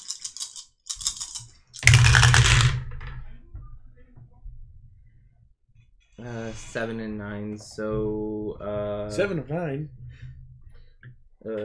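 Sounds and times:
dice rattling through a dice tower: 0:00.0 - 0:03.1
speech: 0:06.2 - 0:10.0, 0:11.4 - 0:11.6.

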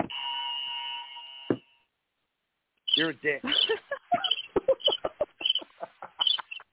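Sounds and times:
small tabletop electric buzzer being pressed: 0:00.0 - 0:01.9
speech: 0:03.0 - 0:04.0
laughter: 0:03.4 - 0:06.7.

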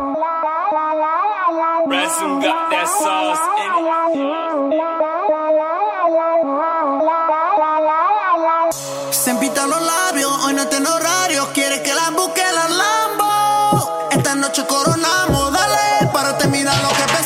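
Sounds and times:
song with sustained melodic vocal line over instrumental backing: 0:00.0 - 0:17.2
speech: 0:01.9 - 0:05.4, 0:08.7 - 0:12.4.

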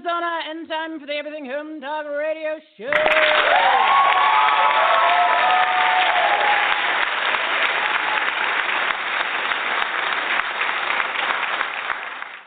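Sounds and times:
speech: 0:00.1 - 0:05.6
studio crowd whoops and cheers: 0:02.9 - 0:07.1
studio audience applauding: 0:02.9 - 0:12.4.

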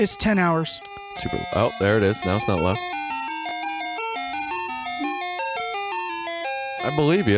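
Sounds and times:
speech: 0:00.0 - 0:03.0, 0:06.8 - 0:07.3
ice cream truck music with electronic chime melody: 0:00.0 - 0:07.3.

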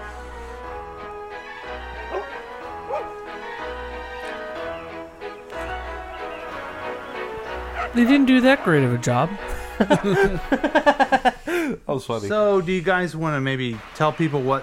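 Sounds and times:
music of a commercial: 0:00.0 - 0:14.6
puppies yipping and barking in a commercial: 0:02.1 - 0:03.2, 0:07.7 - 0:08.0
speech: 0:07.9 - 0:14.6
laughter: 0:09.4 - 0:11.8, 0:13.6 - 0:14.6.

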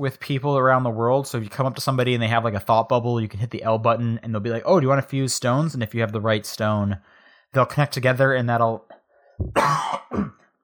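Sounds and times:
speech: 0:00.0 - 0:10.4
rough phlegmy cough from someone with a cold: 0:09.5 - 0:10.5.

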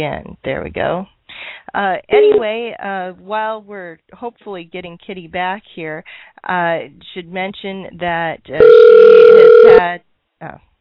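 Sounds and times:
speech: 0:00.0 - 0:10.7
telephone ringing with a steady electronic tone: 0:08.6 - 0:09.8.

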